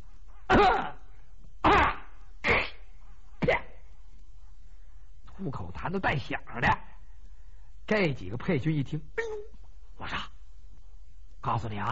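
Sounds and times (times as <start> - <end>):
performer imitating loud forceful coughs: 0.5 - 1.0, 1.6 - 2.8, 3.4 - 3.8
speech: 0.6 - 1.0, 5.5 - 6.9, 7.9 - 9.2, 11.5 - 11.8.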